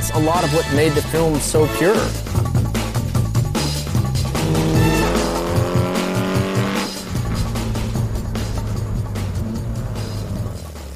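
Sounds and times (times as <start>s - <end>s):
speech: 0.1s - 2.5s
Porsche 906 Carrera 6 race car engine revving: 2.8s - 10.9s.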